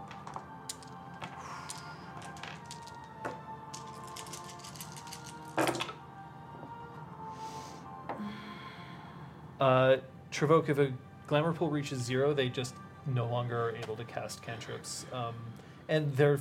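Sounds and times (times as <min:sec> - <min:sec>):
dice rolled for damage clattering across a hard surface: 0:00.1 - 0:05.9
speech: 0:09.6 - 0:16.4.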